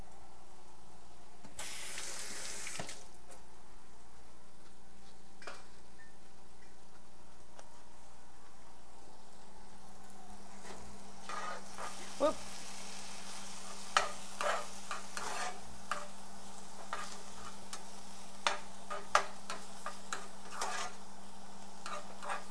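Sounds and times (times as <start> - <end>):
onions frying in a pan with a faint sizzle: 1.6 - 3.0, 8.9 - 22.4.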